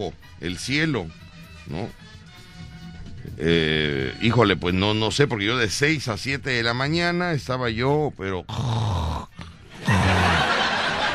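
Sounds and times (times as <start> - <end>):
speech: 0.0 - 2.2, 3.4 - 9.0
man imitating loud snoring with his voice: 8.5 - 10.4
laughter: 9.7 - 11.1.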